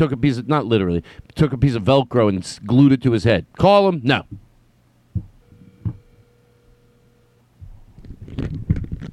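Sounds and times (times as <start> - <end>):
speech: 0.0 - 4.4, 8.3 - 8.8
phone vibrating and rattling inside a hard bowl: 5.2 - 7.4.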